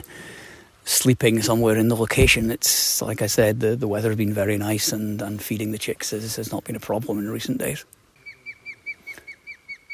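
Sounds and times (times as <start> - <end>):
speech: 0.9 - 8.0
osprey calling near its nest: 6.2 - 9.9.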